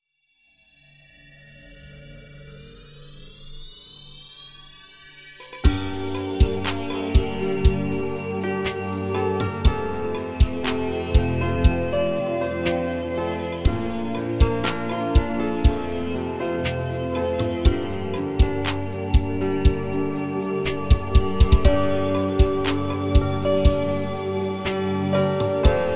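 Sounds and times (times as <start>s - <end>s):
relaxing dance music tuned to 432 Hz: 5.6s - 25.9s.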